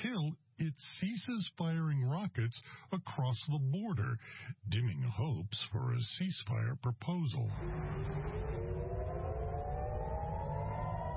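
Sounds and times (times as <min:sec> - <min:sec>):
speech: 0:00.3 - 0:08.5
air raid siren wailing: 0:07.5 - 0:11.1
low rumbling hum: 0:07.5 - 0:11.1.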